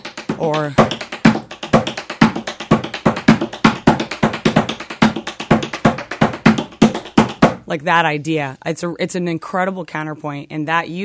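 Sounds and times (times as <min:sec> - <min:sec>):
tap dance heel, paddle and roll steps: 0:00.0 - 0:07.7
speech: 0:00.4 - 0:01.0, 0:07.7 - 0:11.0.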